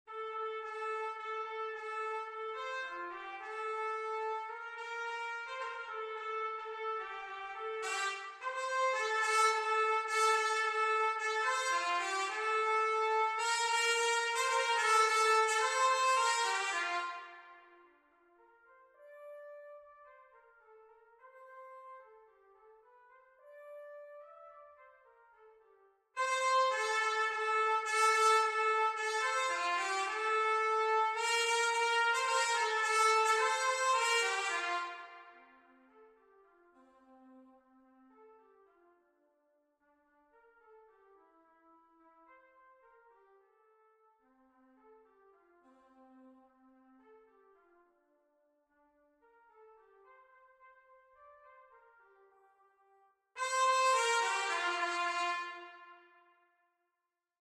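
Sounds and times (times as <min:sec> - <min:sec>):
B-flat trumpet: 0:00.1 - 0:17.8, 0:26.2 - 0:35.7, 0:53.4 - 0:56.5.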